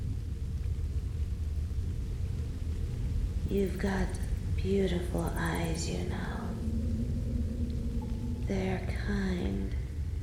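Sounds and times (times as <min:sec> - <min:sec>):
deep continuous rumble: 0:00.0 - 0:10.2
steady rainfall: 0:00.0 - 0:10.2
speech: 0:03.5 - 0:06.5, 0:08.5 - 0:09.8.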